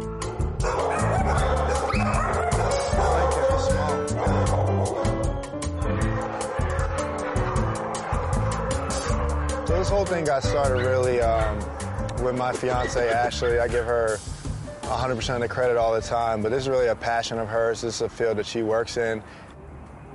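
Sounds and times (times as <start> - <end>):
dogs barking, yipping and whimpering at a dog rescue: 0.2 - 14.2
speech: 10.0 - 14.2, 14.9 - 19.5.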